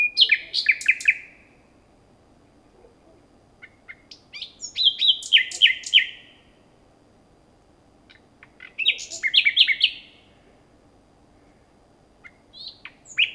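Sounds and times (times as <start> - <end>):
common nightingale Luscinia megarhynchos singing trills and clicks: 0.0 - 1.5, 3.6 - 6.5, 8.0 - 10.2, 12.2 - 13.3
faint low hum: 0.0 - 13.3.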